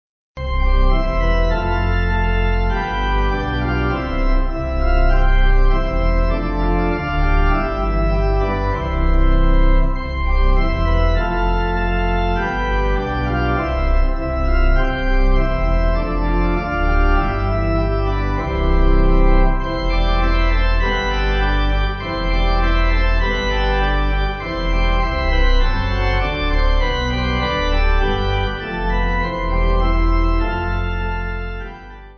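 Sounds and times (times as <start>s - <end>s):
pipe organ music: 0.4s - 32.1s.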